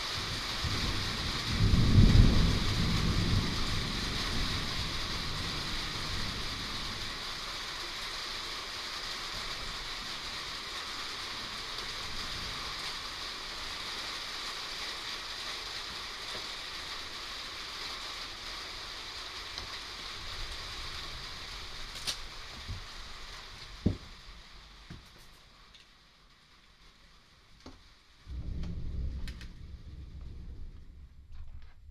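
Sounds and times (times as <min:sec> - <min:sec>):
steady rain pattering on a house roof: 0:00.0 - 0:31.8
low rumble: 0:28.2 - 0:31.8.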